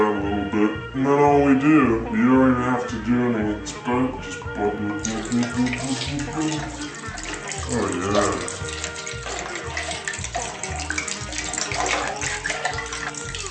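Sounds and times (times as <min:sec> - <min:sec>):
thumping rhythmic music track: 0:00.0 - 0:13.4
speech: 0:01.0 - 0:06.9, 0:07.7 - 0:08.8
liquid pouring into a glass: 0:05.0 - 0:13.4.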